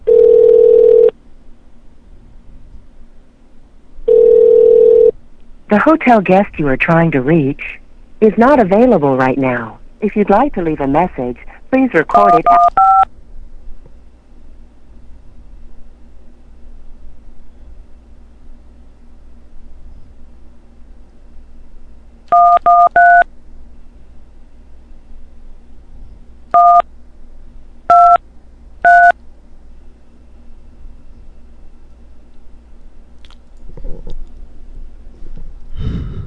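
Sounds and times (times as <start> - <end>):
faint steady hum: 0.0 - 36.2
telephone keypad tones from dialing a hotel phone line: 0.1 - 1.1, 12.1 - 13.0, 22.3 - 23.2, 26.6 - 26.8, 27.9 - 28.2, 28.8 - 29.1
speech: 5.7 - 13.1.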